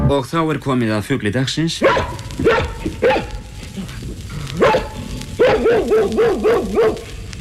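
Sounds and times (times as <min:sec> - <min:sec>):
speech: 0:00.1 - 0:03.2, 0:05.8 - 0:07.1
dog barking and yipping: 0:01.8 - 0:03.4, 0:04.6 - 0:07.2.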